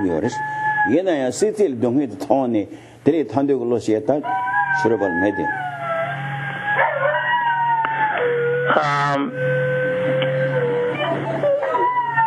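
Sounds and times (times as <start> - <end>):
dogs crying and howling in another room: 0.0 - 1.2, 4.2 - 12.2
speech: 0.0 - 5.8, 8.7 - 9.6
steady low hum: 0.0 - 12.2.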